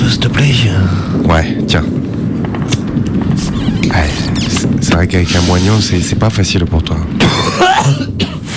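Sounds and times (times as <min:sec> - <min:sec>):
speech: 0:00.1 - 0:02.1, 0:03.0 - 0:08.3
raspy cough: 0:07.2 - 0:08.5.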